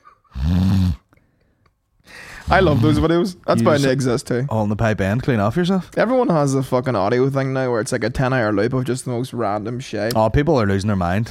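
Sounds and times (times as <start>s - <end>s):
person imitating a snore: 0.3s - 1.1s
speech: 2.5s - 11.2s.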